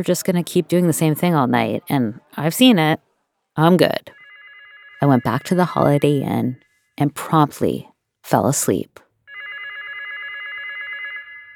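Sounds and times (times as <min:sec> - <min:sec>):
speech: 0:00.0 - 0:04.2, 0:05.0 - 0:09.0
hotel telephone bell ringing: 0:04.0 - 0:06.8, 0:09.3 - 0:11.5.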